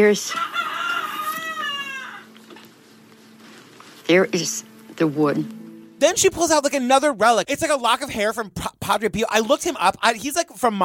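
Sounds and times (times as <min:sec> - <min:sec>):
speech: 0:00.0 - 0:00.6, 0:04.1 - 0:10.8
rooster crowing: 0:00.3 - 0:02.4.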